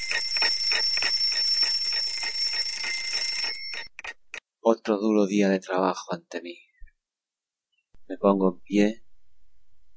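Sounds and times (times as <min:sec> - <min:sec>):
alarm clock ringing with a rapid metallic bell trill: 0:00.0 - 0:04.0
speech: 0:04.8 - 0:06.7, 0:08.1 - 0:09.0.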